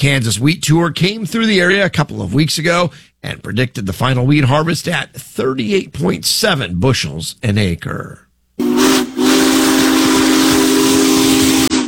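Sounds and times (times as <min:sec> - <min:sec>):
speech: 0:00.0 - 0:08.7
Union Pacific Big Boy 4014 steam locomotive whistle in Nebraska: 0:08.6 - 0:11.8.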